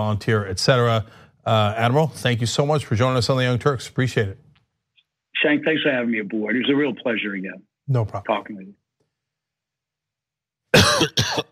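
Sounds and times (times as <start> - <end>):
speech: 0.0 - 4.4, 5.4 - 8.8, 10.8 - 11.5
person coughing raspily: 10.7 - 11.5.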